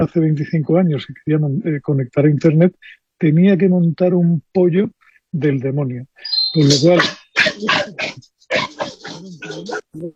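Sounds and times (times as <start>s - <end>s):
speech: 0.0s - 10.1s
dog barking and yipping: 6.8s - 9.8s.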